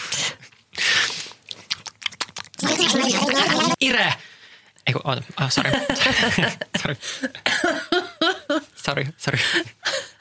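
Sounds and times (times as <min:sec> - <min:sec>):
person chewing and smacking lips while eating: 0:00.4 - 0:03.3
laughter: 0:02.6 - 0:03.8, 0:05.5 - 0:08.7
speech: 0:02.9 - 0:04.3, 0:04.9 - 0:07.6, 0:08.9 - 0:09.8.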